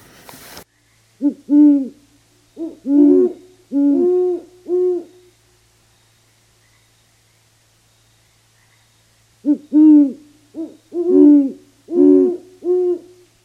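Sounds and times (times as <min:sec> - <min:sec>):
faint steady hum: 0:00.0 - 0:13.4
great horned owl deep hooting: 0:00.9 - 0:05.6, 0:08.6 - 0:13.4.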